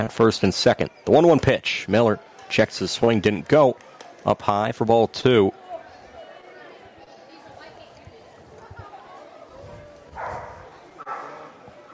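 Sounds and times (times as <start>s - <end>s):
speech: 0.0s - 5.6s
crowd murmur and chatter at a ballpark: 0.0s - 11.9s
dogs barking at a ballpark: 10.1s - 11.9s.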